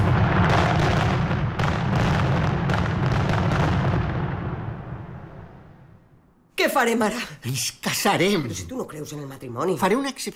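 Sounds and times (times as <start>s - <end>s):
fireworks rockets booming and crackling: 0.0s - 5.9s
speech: 6.8s - 10.3s.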